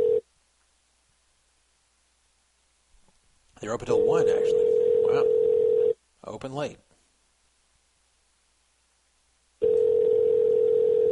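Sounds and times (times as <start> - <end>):
ringback tone of an outgoing phone call: 0.0 - 0.2, 3.9 - 6.0, 9.6 - 11.1
speech: 3.6 - 5.6, 6.2 - 6.8.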